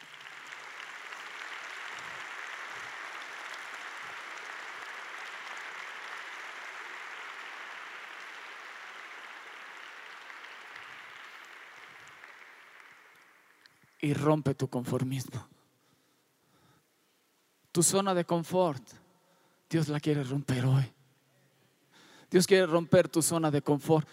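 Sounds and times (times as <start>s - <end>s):
large crowd applauding: 0.0s - 13.8s
speech: 14.0s - 15.5s, 17.8s - 19.0s, 19.7s - 21.0s, 22.3s - 24.1s.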